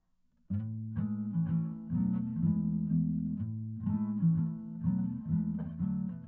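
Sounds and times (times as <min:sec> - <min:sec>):
acoustic guitar with formant shifted 18 semitones down: 0:00.5 - 0:06.2.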